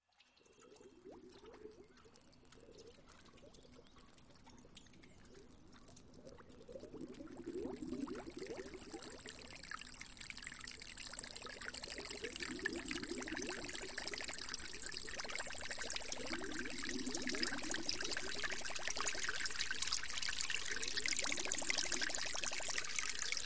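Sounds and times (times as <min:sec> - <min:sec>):
flowing water: 0:00.4 - 0:23.4.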